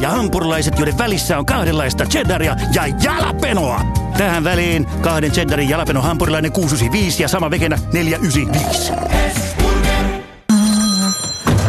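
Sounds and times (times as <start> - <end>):
speech: 0.0 - 9.6
telephone ringing with a bright electronic trill: 10.5 - 11.6.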